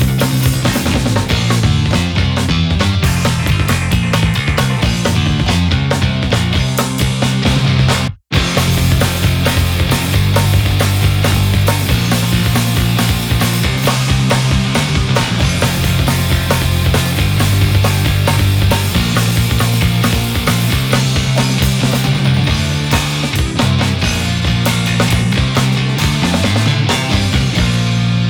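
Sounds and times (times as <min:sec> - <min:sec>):
pick sound: 0:00.2 - 0:28.2.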